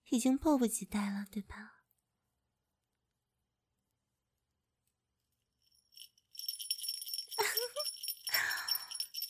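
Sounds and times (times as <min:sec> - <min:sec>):
speech: 0:00.1 - 0:01.8
small bell jingling: 0:05.6 - 0:09.2.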